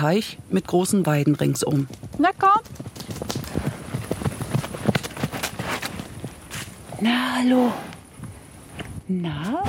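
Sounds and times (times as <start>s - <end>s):
speech: 0.0s - 3.1s, 7.0s - 7.9s, 9.1s - 9.6s
two ponies trotting on a soft lush green meadow: 0.7s - 7.1s, 7.7s - 9.0s.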